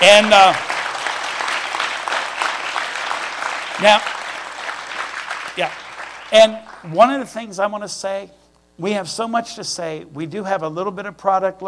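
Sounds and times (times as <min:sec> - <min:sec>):
speech: 0:00.0 - 0:00.7, 0:03.8 - 0:04.2, 0:05.6 - 0:11.6
congregation applauding at a church service: 0:00.0 - 0:07.3.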